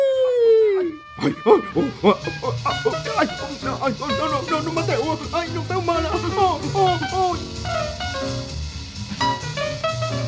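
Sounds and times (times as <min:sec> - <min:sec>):
dog whining: 0:00.0 - 0:01.9
laughter: 0:01.2 - 0:07.4
speech: 0:01.2 - 0:08.6.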